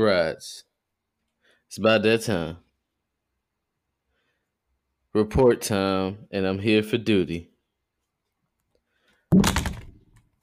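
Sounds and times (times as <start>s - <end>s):
speech: 0.0s - 0.7s, 1.7s - 2.6s, 5.2s - 7.5s
person falling out of a chair onto the floor: 9.3s - 10.1s.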